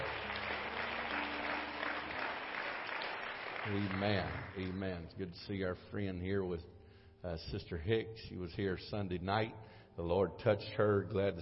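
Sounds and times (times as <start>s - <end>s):
church audience clapping in First Pentecostal Church in Silsbee Texas: 0.0s - 5.1s
speech: 3.6s - 11.4s.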